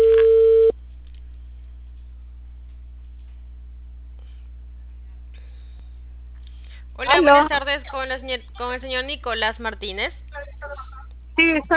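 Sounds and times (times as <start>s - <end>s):
telephone line tone while placing a call: 0.0s - 0.7s
speech: 7.2s - 10.2s, 11.4s - 11.7s.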